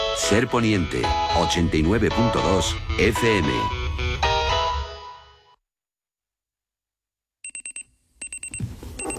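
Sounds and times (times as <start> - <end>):
speech: 0.2 - 3.8
alarm clock ringing with rapid high electronic beeps: 7.4 - 9.1.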